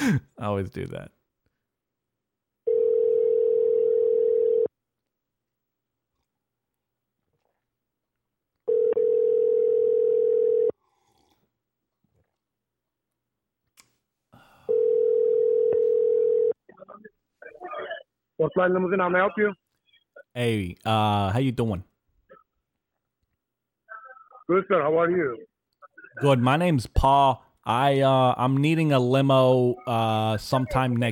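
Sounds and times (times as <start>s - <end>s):
speech: 0.1s - 1.2s, 18.4s - 19.6s, 20.4s - 21.9s, 24.5s - 25.5s, 26.2s - 31.0s
telephone ringback tone on a call to a taxi service in New York: 2.7s - 4.7s, 8.7s - 10.7s, 14.7s - 16.6s
breathing: 10.8s - 11.6s, 14.3s - 15.2s.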